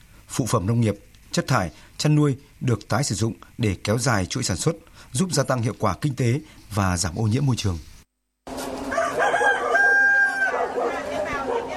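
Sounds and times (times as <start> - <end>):
speech: 0.4 - 7.9
H'Mong rooster crowing at a farm cooperative in Thai Nguyen, Vietnam: 8.5 - 11.7
faint farmyard noise: 8.5 - 11.7.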